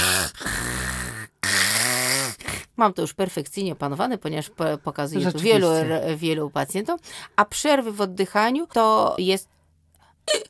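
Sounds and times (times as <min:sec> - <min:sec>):
person imitating snoring with the nose blocked: 0:00.0 - 0:02.7
speech: 0:02.8 - 0:09.5, 0:10.3 - 0:10.4.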